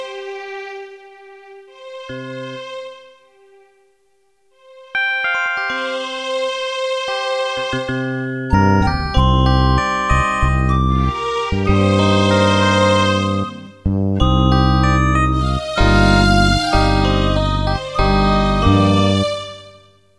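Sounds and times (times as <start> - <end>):
animation intro music: 4.6 - 19.7.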